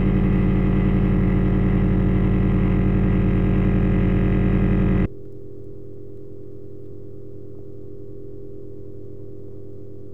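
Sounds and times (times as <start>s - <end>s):
airborne sound: 0.0s - 5.1s
structure-borne sound: 0.0s - 5.1s.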